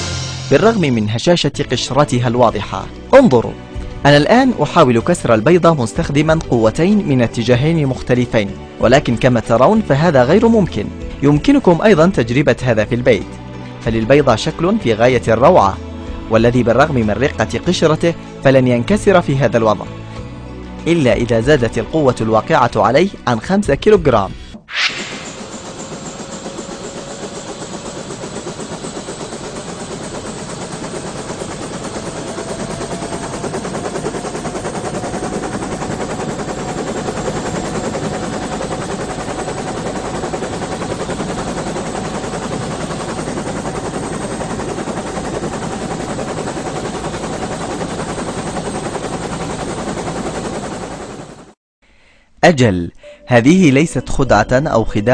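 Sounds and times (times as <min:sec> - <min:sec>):
helicopter turbine whine: 0:00.0 - 0:01.0, 0:24.6 - 0:51.6
1300-kilogram helicopter landing on eggs, rotor chop: 0:00.0 - 0:13.3, 0:24.7 - 0:51.6
speech: 0:00.5 - 0:20.0, 0:20.8 - 0:24.8, 0:52.5 - 0:55.1.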